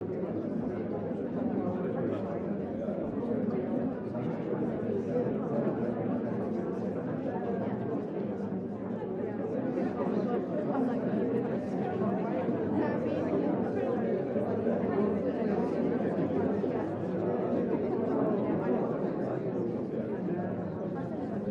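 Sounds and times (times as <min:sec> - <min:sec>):
muffled crowd: 0:00.0 - 0:21.4.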